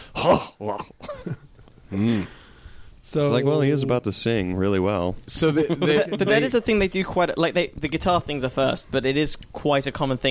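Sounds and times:
singer's rough phlegmy throat clearing in a song recording: 0.0 - 2.3
speech: 0.2 - 2.4, 3.1 - 10.2.

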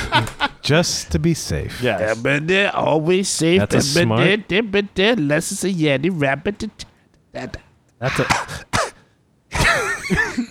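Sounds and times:
speech: 0.2 - 8.7
grandfather clearing throat raspily: 8.0 - 10.4
grandfather coughing: 8.0 - 10.4.

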